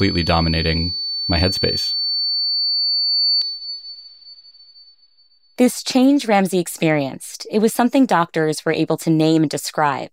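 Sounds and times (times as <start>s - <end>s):
speech: 0.0s - 2.0s, 5.6s - 10.1s
steady high-pitched sine tone depicting tinnitus: 0.0s - 7.0s.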